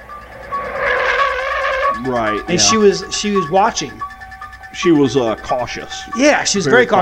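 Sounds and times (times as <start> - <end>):
car driving past: 0.0 - 4.6
speech: 2.0 - 4.1, 4.8 - 6.9.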